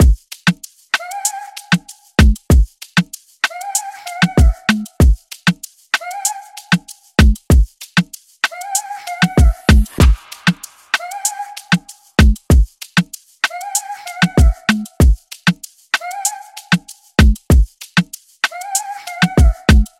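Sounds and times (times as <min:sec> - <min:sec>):
96 bpm modern afrobeat drum loop: 0:00.0 - 0:19.9.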